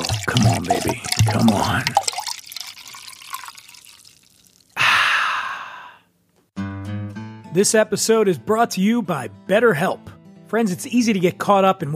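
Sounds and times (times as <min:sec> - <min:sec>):
beer pouring into a glass: 0:00.0 - 0:04.8
speech: 0:00.4 - 0:02.1, 0:07.6 - 0:11.9.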